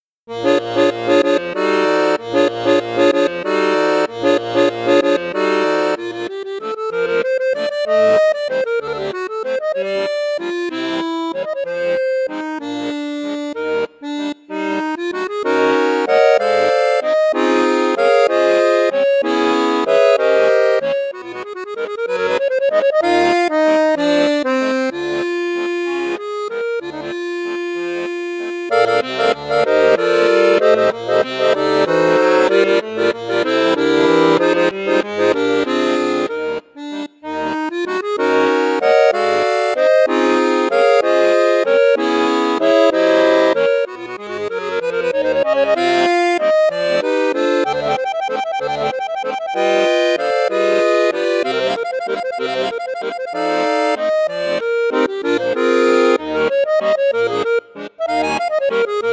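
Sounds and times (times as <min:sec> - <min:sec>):
accordion playing in bassoon register: 0:00.0 - 0:59.1.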